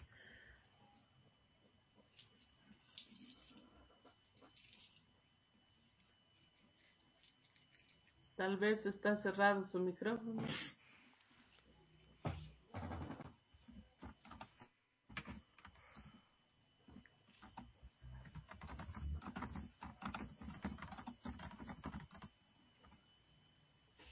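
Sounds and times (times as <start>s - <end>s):
speech: 8.4s - 10.8s
computer keyboard typing: 14.0s - 15.8s, 17.4s - 23.0s.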